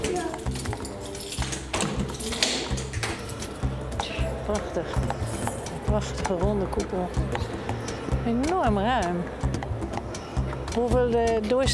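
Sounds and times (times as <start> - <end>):
key turning in a door lock of a prison domed cell building: 0.0 - 3.7
low murmur: 0.0 - 11.7
speech: 4.5 - 5.2, 5.9 - 9.5, 10.8 - 11.7.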